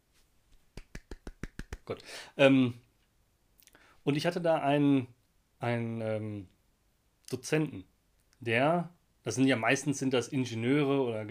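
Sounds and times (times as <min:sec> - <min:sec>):
crisp hand claps: 0:00.5 - 0:01.9
speech: 0:01.9 - 0:02.8, 0:04.0 - 0:06.5, 0:07.3 - 0:11.2.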